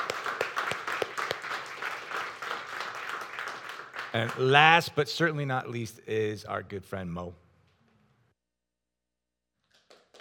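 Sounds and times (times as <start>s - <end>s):
crowd applauding for a speaker: 0.0s - 5.0s, 9.7s - 10.1s
speech: 4.1s - 7.4s.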